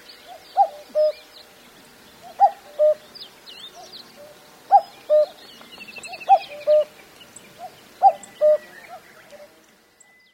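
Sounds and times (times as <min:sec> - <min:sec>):
other birds giving thin chirps: 0:00.0 - 0:10.3
common cuckoo two-note cuck-oo call: 0:00.6 - 0:01.2, 0:02.3 - 0:03.0, 0:06.0 - 0:07.0, 0:07.6 - 0:10.3.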